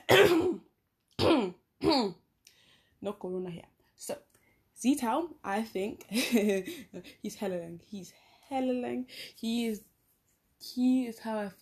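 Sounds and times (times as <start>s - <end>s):
person coughing: 0.0s - 2.2s
speech: 1.2s - 2.2s, 3.0s - 9.9s, 10.6s - 11.6s.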